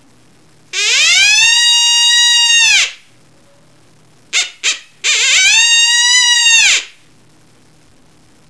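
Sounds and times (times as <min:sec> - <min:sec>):
female coyote invitation call: 0:00.8 - 0:03.0, 0:04.4 - 0:07.0.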